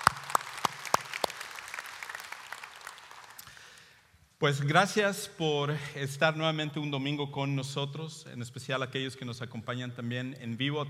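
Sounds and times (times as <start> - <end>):
congregation applauding: 0.0 - 3.9
speech: 4.4 - 10.8.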